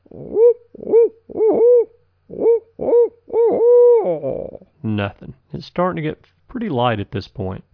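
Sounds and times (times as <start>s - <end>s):
person imitating owl hoots on a ridge at dawn while turkey hunting: 0.0s - 4.8s
speech: 4.9s - 7.7s.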